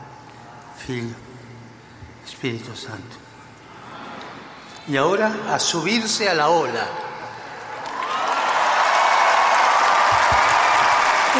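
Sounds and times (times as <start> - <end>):
speech: 0.8 - 1.4, 2.3 - 3.3, 4.8 - 7.1
large crowd of young people in Lisbon cheering: 7.6 - 11.3
applause: 7.7 - 11.3.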